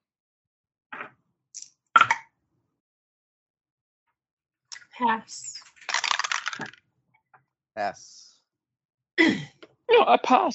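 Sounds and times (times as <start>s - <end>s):
speech: 5.0s - 5.6s, 6.6s - 6.8s, 7.8s - 8.2s, 9.2s - 10.5s
dice rolled for a game tumbling across a hard tabletop: 5.8s - 6.8s.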